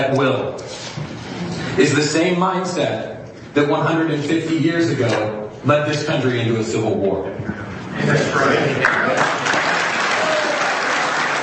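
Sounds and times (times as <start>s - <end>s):
speech: 0.0s - 9.2s
audience applause after a speech: 8.4s - 11.4s.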